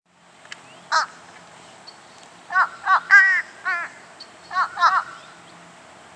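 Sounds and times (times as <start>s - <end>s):
low background hiss: 0.1s - 6.1s
fish crow uttering clipped nasal caws: 0.9s - 1.2s, 2.5s - 5.3s.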